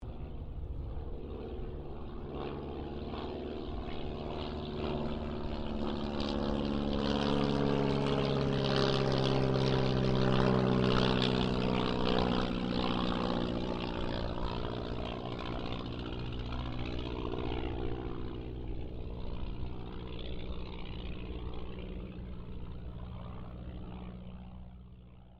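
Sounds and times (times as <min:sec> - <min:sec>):
Auster III aircraft passing: 0:00.0 - 0:25.3.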